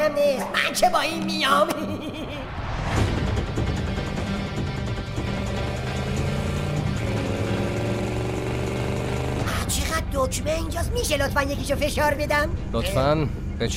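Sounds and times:
speech: 0:00.1 - 0:03.0, 0:10.1 - 0:13.7
car engine rumbling, revving and accelerating: 0:02.6 - 0:10.9.

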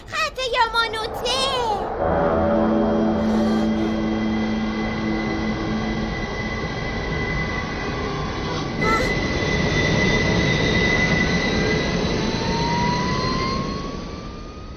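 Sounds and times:
train approaching on a Tokyo line: 0:00.0 - 0:14.7.

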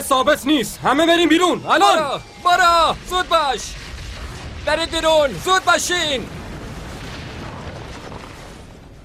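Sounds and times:
speech: 0:00.0 - 0:03.8, 0:04.7 - 0:06.4
steam pressure explosion bursting a chamber: 0:02.0 - 0:09.0.

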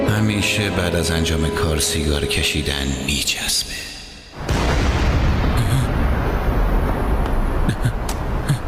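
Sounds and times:
speech: 0:00.2 - 0:04.0
loud explosion: 0:04.4 - 0:07.7
continuous rumbling roar with crackles and pops: 0:04.4 - 0:08.5.

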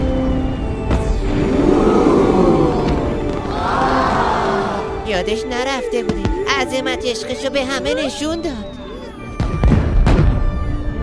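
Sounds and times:
steady tonal background: 0:00.0 - 0:09.6
fireworks going off during a celebration: 0:02.8 - 0:03.5, 0:09.4 - 0:10.7
speech: 0:05.2 - 0:08.8.

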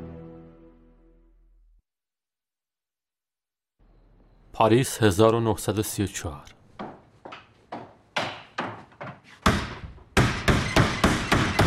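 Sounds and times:
speech: 0:04.6 - 0:06.6
forceful banging on a door: 0:07.7 - 0:11.6.

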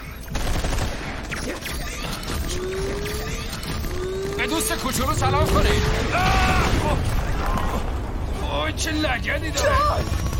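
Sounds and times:
dense continuous burst of rapid gunfire: 0:00.2 - 0:07.5
speech: 0:04.5 - 0:07.2, 0:08.6 - 0:10.2.

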